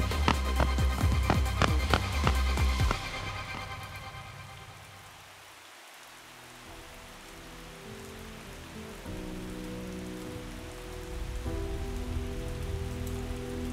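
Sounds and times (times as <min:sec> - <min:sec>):
low sustained musical tones shifting chords: 0:00.0 - 0:13.7
steady rain falling: 0:00.0 - 0:13.7.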